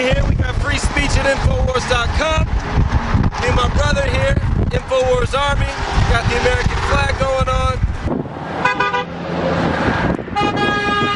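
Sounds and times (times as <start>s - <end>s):
steady roar of road noise on a roadway in Salina Kansas: 0.0s - 11.1s
speech: 1.2s - 2.8s, 3.6s - 7.8s
car horns honking from passing traffic in support of a roadside protest: 8.6s - 9.2s, 10.3s - 11.1s.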